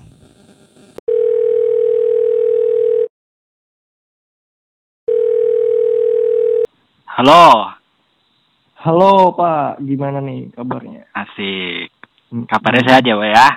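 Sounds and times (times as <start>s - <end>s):
phone ringback tone: 1.1s - 3.1s, 5.1s - 6.7s
speech: 7.2s - 7.7s, 8.8s - 13.5s.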